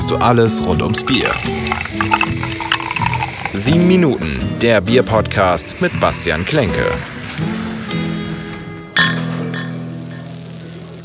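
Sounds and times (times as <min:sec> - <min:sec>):
speech: 0:00.1 - 0:02.6, 0:03.5 - 0:07.5
beer glasses clinking in a toast in a small beer cellar: 0:00.4 - 0:04.0, 0:09.0 - 0:10.4.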